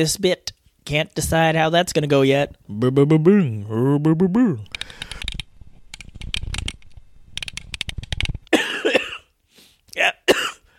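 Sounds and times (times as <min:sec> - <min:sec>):
speech: 0:00.0 - 0:05.2
harsh coughing fit: 0:08.5 - 0:09.4, 0:10.0 - 0:10.7.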